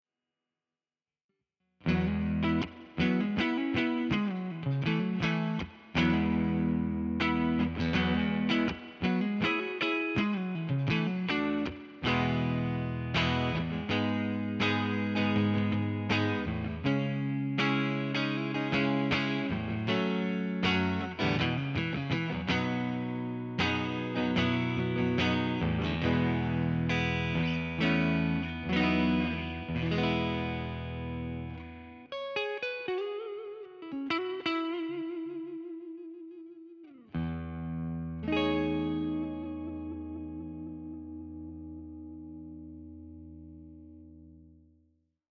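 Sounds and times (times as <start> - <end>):
clean electric guitars: 1.8 - 44.5.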